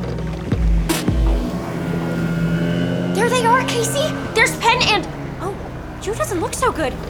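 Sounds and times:
boat engine drone moving through water: 0.0 - 7.0
speech: 3.2 - 5.2, 6.0 - 7.0.

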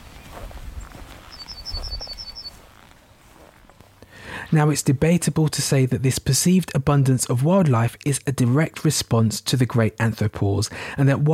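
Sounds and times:
yellowhammer singing from the top of a hawthorn bush: 0.0 - 3.4
footsteps: 0.0 - 4.8
speech: 4.5 - 11.3.

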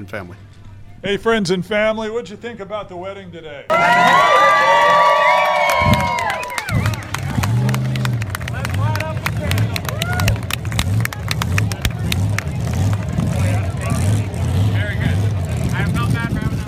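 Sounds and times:
speech: 0.0 - 5.0, 5.8 - 6.8
crowd chattering: 3.7 - 16.6
race car engine revving: 5.5 - 16.6.

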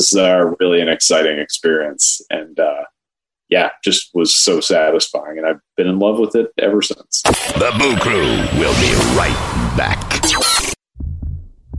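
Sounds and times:
speech: 0.0 - 2.9, 3.5 - 10.7
burst of harsh noise: 7.2 - 10.8
normal human heartbeat: 11.0 - 11.7.

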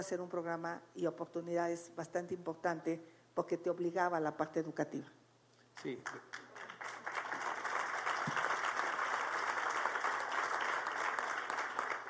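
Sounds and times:
speech: 0.0 - 5.2, 5.8 - 6.4
audience applause: 6.4 - 12.0.

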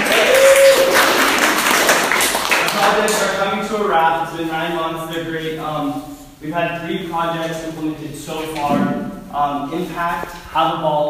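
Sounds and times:
audience applause: 0.0 - 3.4
speech: 3.9 - 11.0.

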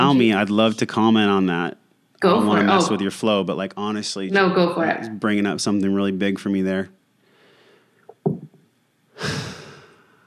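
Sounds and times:
speech: 0.1 - 7.0
person exhaling through the mouth: 7.2 - 8.0, 9.2 - 10.2
person breathing in through the nose: 9.2 - 10.0.

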